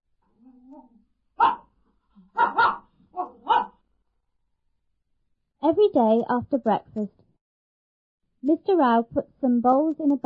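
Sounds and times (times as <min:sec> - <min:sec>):
blind man's dog barking sharply: 0:01.4 - 0:03.8
speech: 0:05.7 - 0:07.2, 0:08.4 - 0:10.2.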